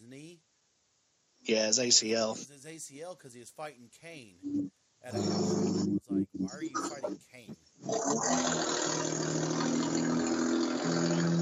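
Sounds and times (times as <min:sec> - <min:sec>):
speech: 0:01.5 - 0:09.6
car with a bad muffler driving past: 0:05.2 - 0:06.0, 0:07.9 - 0:11.4.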